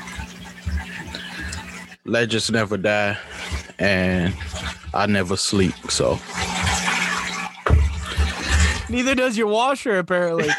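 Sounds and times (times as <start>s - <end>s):
shower water running in another room: 0.0s - 9.4s
speech: 2.1s - 6.4s, 8.9s - 10.5s
low thudding rumbles: 7.7s - 9.0s.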